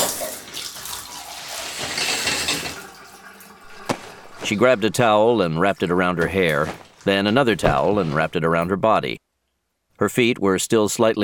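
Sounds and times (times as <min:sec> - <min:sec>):
shower water running and splashing: 0:00.0 - 0:07.4
speech: 0:04.5 - 0:09.2, 0:10.0 - 0:11.2.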